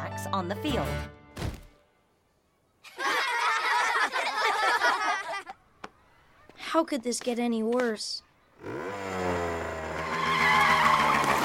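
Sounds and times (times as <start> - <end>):
speech: 0.3 - 1.2, 6.8 - 9.0
laughter: 2.8 - 5.6
motorcycle engine humming: 8.6 - 11.4
motorcycle skidding to a stop with tire squeal: 8.7 - 11.4.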